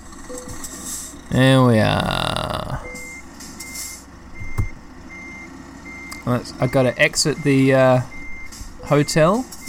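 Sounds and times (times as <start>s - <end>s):
truck engine starting and rumbling in a truck driving game: 0.0s - 9.6s
speech: 1.3s - 2.6s, 6.3s - 8.2s, 8.9s - 9.6s
high-pitched beeps: 2.8s - 9.6s.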